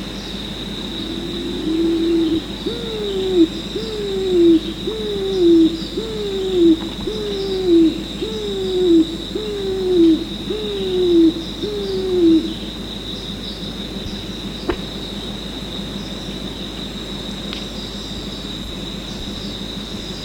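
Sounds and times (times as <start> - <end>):
steady high hum: 0.0 - 20.2
pigeon giving hollow coos: 1.0 - 12.6.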